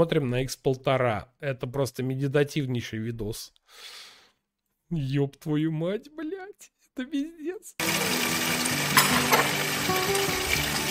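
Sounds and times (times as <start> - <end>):
speech: 0.0 - 4.0, 4.9 - 10.8
hot water poured over ingredients in a pan for a cognac recipe: 7.8 - 10.8.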